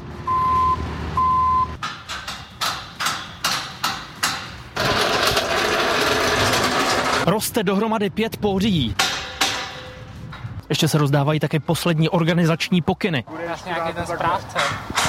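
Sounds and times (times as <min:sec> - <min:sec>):
reversing beeps from heavy machinery: 0:00.3 - 0:01.8
rhythmic metallic clanks: 0:01.8 - 0:07.3, 0:09.0 - 0:10.6, 0:14.5 - 0:15.0
speech: 0:07.3 - 0:09.0, 0:10.7 - 0:15.0.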